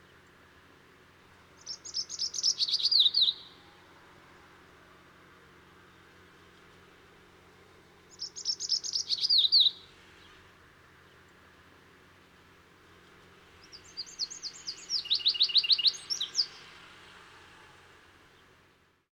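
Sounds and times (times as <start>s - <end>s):
background hiss: 0.0s - 19.1s
bird singing aberrant song of trilled notes and whistles: 1.6s - 3.5s, 8.1s - 9.8s, 13.6s - 16.6s.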